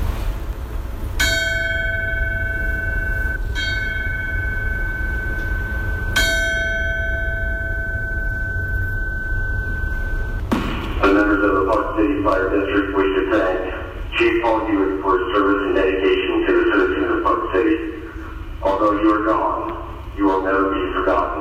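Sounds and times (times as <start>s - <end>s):
steady low rumble: 0.0s - 21.3s
memorial bell ringing: 1.2s - 10.4s.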